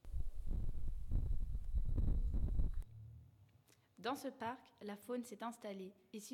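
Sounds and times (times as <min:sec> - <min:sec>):
wind gusting outdoors in a park: 0:00.0 - 0:02.8
speech: 0:04.0 - 0:06.3.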